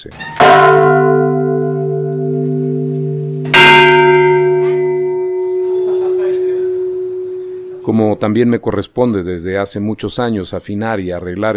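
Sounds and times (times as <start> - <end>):
speech: 0.0 - 0.8, 7.9 - 11.5
deep cathedral church bell ringing: 0.4 - 8.1.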